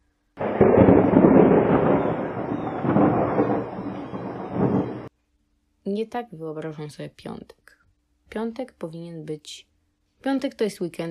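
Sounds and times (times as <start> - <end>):
gusting wind in stormy weather: 0.4 - 5.1
rain in stormy weather: 0.4 - 5.1
speech: 5.9 - 7.7, 8.3 - 11.0.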